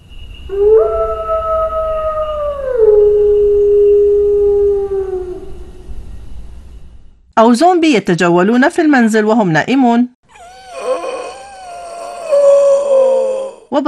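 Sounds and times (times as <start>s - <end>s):
speech: 0.5s - 0.8s, 7.4s - 10.2s
lone wolf howling: 0.5s - 5.8s, 10.3s - 13.7s.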